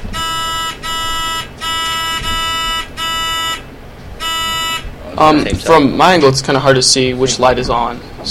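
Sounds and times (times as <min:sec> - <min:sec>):
loud electronic quiz buzzers being tested: 0:00.0 - 0:04.9
speech: 0:05.2 - 0:08.2.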